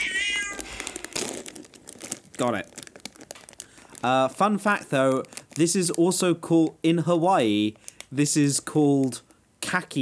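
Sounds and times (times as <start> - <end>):
cat meowing: 0.0 - 0.8
speech: 2.4 - 2.8, 4.0 - 10.0.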